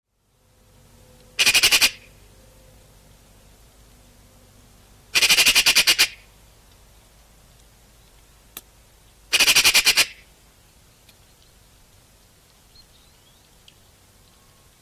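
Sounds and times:
Eurasian magpie Pica pica chattering: 1.4s - 2.1s, 5.2s - 6.3s, 9.3s - 10.2s.

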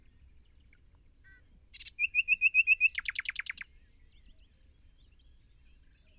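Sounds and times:
common nightingale Luscinia megarhynchos singing: 0.4s - 4.3s.

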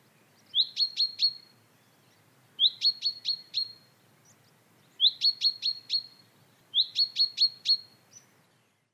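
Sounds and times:
common chaffinch Fringilla coelebs calling: 0.5s - 1.5s, 2.6s - 3.9s, 5.0s - 8.3s.

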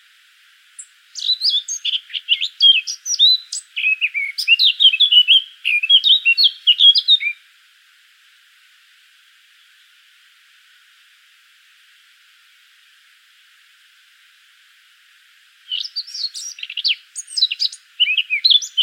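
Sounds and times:
Eurasian blackcap song: 0.7s - 7.4s, 15.6s - 18.8s.

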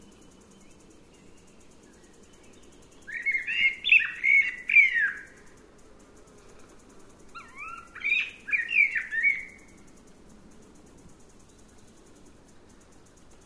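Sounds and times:
Eurasian blackbird Turdus merula singing: 2.3s - 5.3s, 7.4s - 9.6s.

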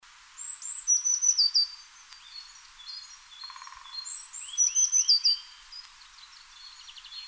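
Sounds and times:
Eurasian blue tit Cyanistes caeruleus song: 0.4s - 7.2s.

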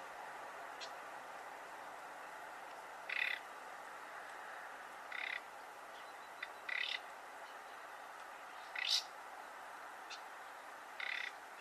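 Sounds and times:
background hiss: 0.0s - 11.5s
common nightingale Luscinia megarhynchos giving rasping croak-like calls: 3.1s - 3.4s, 5.1s - 5.4s, 6.4s - 7.0s, 8.7s - 9.1s, 11.0s - 11.4s.

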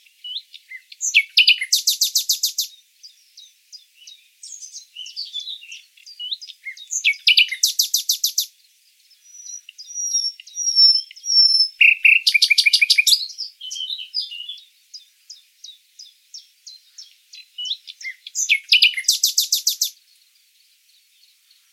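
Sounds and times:
common nightingale Luscinia megarhynchos singing: 0.0s - 21.7s.

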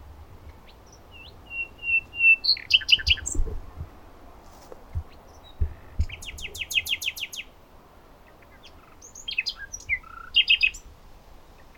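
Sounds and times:
Luscinia megarhynchos song: 0.0s - 3.6s, 4.8s - 11.7s.

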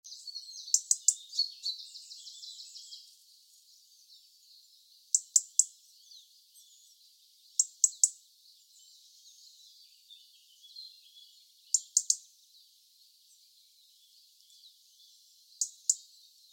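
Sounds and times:
European robin Erithacus rubecula giving sharp dry tick calls: 0.0s - 3.2s, 5.1s - 5.9s, 7.5s - 8.2s, 11.7s - 12.4s, 15.6s - 16.3s
faint high twittering: 0.0s - 16.5s.

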